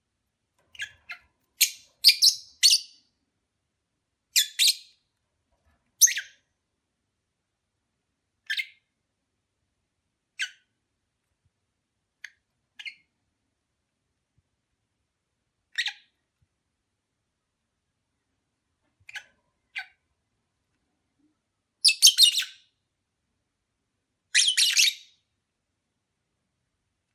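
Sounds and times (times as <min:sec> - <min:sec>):
lovebird chirps during courtship: 0:00.7 - 0:03.0, 0:04.3 - 0:05.0, 0:06.0 - 0:06.4, 0:08.4 - 0:08.9, 0:10.4 - 0:10.7, 0:12.2 - 0:13.1, 0:15.7 - 0:16.2, 0:21.8 - 0:22.7, 0:24.3 - 0:25.2.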